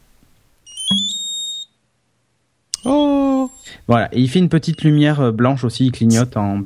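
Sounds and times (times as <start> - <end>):
small electronic tracker tag chirping: 0.7 - 1.7, 2.8 - 3.8, 4.6 - 5.1
speech: 3.9 - 6.6.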